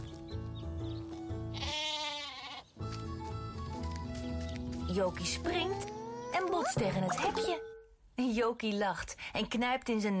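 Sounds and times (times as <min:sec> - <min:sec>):
bouncy music: 0:00.0 - 0:07.9
sheep bleating: 0:01.5 - 0:02.7
speech: 0:05.0 - 0:10.1.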